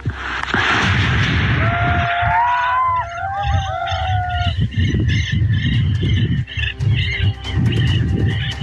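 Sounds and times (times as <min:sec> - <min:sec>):
gunshots during an armored police operation in the rain: 0:00.0 - 0:02.6
dense rumbling outdoor din in the rain: 0:00.0 - 0:08.6.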